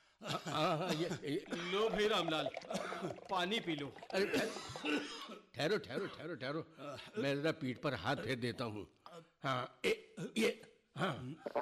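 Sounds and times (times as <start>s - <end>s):
speech: 0.2s - 11.6s
man coughing: 0.3s - 2.0s, 2.6s - 3.2s, 4.2s - 7.3s, 10.2s - 10.6s.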